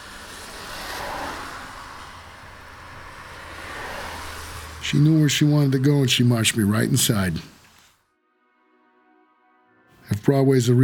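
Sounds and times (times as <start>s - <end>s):
taxi cab engine hum while driving: 0.0s - 7.8s
speech: 4.9s - 7.5s, 10.3s - 10.8s.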